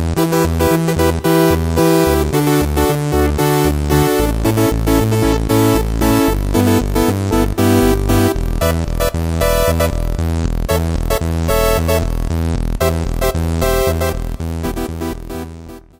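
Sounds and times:
hot synth brass preset on a Yamaha EX5R synthesizer: 0.2s - 15.9s.

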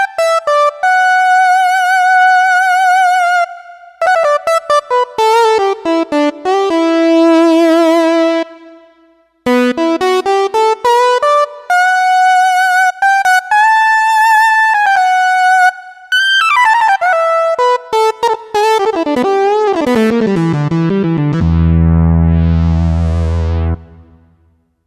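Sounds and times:
vintage lead on a Kawai K5000S: 0.2s - 24.5s.

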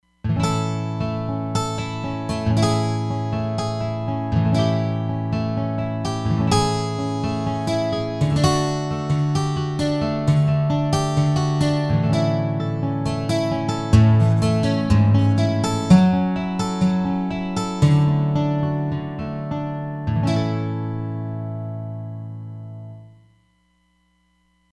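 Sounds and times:
wide acoustic guitar on a Roland Fantom XR synthesizer: 0.0s - 23.4s.

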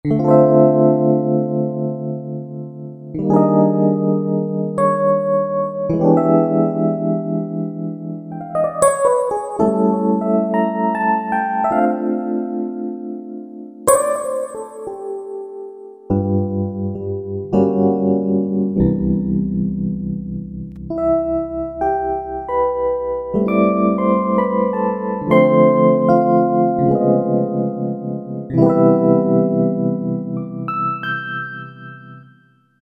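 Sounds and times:
Roland V-Synth synthesizer factory patches: 0.0s - 32.6s
MK-80 Rhodes electric piano: 0.0s - 32.8s.

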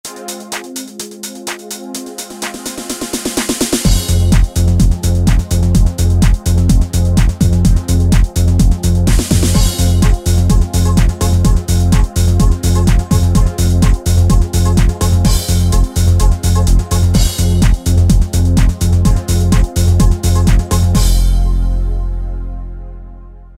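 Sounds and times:
deep Yamaha DJX keyboard style pattern: 0.1s - 23.5s.

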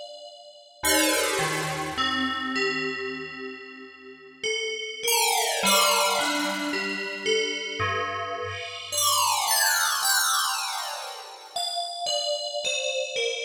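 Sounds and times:
spectrum bell synthesizer sound: 0.9s - 3.3s, 5.1s - 13.3s.

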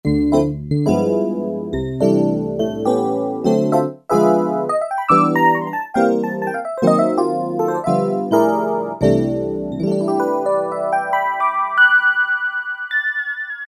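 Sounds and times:
electric piano: 0.1s - 13.6s.

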